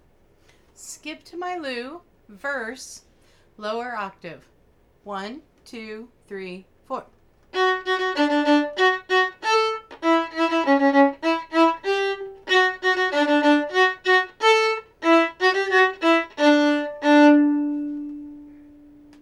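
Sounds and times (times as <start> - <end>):
folk tune melody in a lower octave: 7.6 - 19.2.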